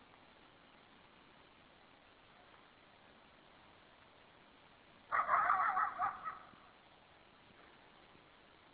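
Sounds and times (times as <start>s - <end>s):
coyote call: 5.1s - 6.8s.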